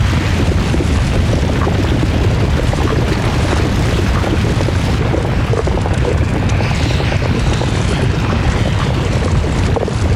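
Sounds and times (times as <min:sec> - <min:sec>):
lava: 0:00.0 - 0:10.1.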